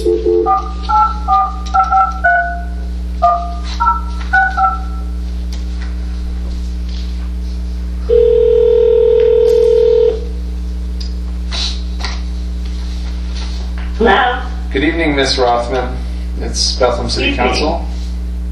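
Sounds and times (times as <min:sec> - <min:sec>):
steady telephone tone: 0:00.0 - 0:05.2, 0:08.0 - 0:10.3
low electrical hum: 0:00.0 - 0:18.5
touch-tone beeps of a phone number being dialed: 0:00.2 - 0:02.6, 0:03.2 - 0:05.0
speech: 0:15.1 - 0:18.0.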